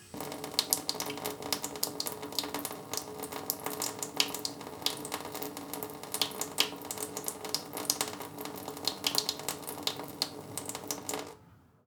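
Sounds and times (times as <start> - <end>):
kitchen sink water running slowly: 0.0 - 11.4.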